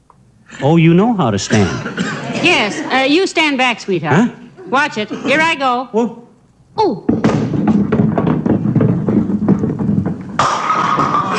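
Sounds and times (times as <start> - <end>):
speech: 0.5 - 6.2, 6.8 - 7.2
bowling ball rolling down the lane: 7.0 - 11.3.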